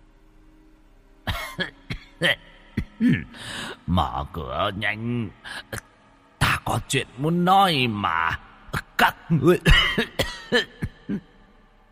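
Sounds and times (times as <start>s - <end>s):
exhausted old man coughing: 1.3s - 3.3s, 9.6s - 11.3s
speech: 2.2s - 5.9s, 6.7s - 8.4s, 9.0s - 11.3s.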